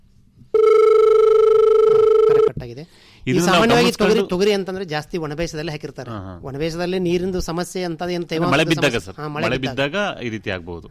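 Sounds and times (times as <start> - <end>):
telephone ringing for an incoming call: 0.5 - 2.5
speech: 2.7 - 10.9.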